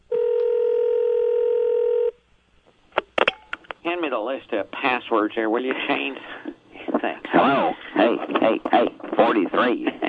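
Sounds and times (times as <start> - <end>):
telephone dial tone: 0.1 - 2.1
speech: 4.0 - 10.0.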